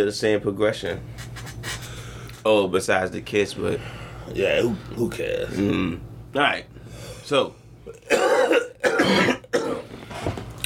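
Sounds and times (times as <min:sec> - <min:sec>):
speech: 0:00.0 - 0:01.5, 0:02.4 - 0:06.7, 0:07.3 - 0:08.1
person coughing harshly: 0:08.0 - 0:09.9.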